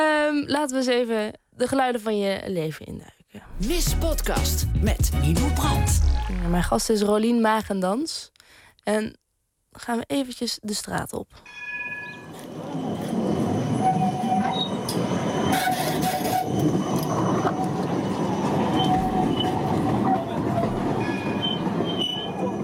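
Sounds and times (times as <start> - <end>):
speech: 0.0 - 9.2, 9.8 - 11.7
tram passing along a city street in Amsterdam: 12.3 - 22.6
high metallic squeals of tram wheels on rails: 13.6 - 22.6.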